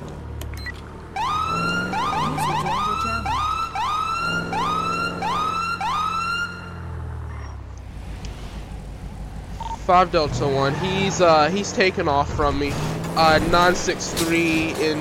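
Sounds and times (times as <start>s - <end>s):
police car siren in a video game wailing in rising yelps: 1.1s - 7.4s
speech: 9.9s - 15.0s.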